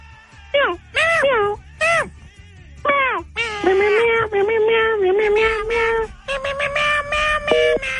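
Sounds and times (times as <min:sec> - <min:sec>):
male phone caller imitating a cat meowing: 0:00.5 - 0:02.1, 0:02.9 - 0:07.9.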